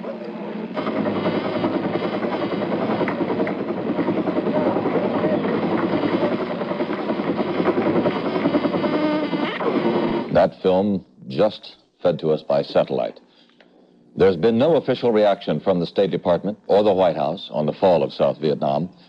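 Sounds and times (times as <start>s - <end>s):
helicopter flying overhead during the evacuation of Saigon: 0.0s - 10.8s
speech: 10.6s - 13.2s, 14.2s - 19.0s.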